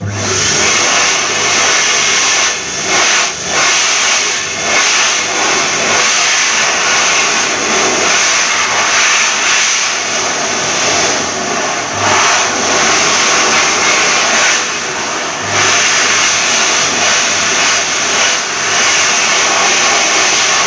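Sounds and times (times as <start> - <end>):
hand dryer running in a postal museum: 0.0 - 20.6.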